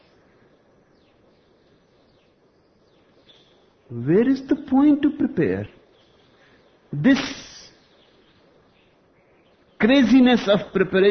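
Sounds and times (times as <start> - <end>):
birds calling with descending chirps: 0.0 - 11.0
steady hissing outdoor background: 0.0 - 11.0
speech: 3.9 - 5.8, 6.9 - 7.4, 9.9 - 11.0.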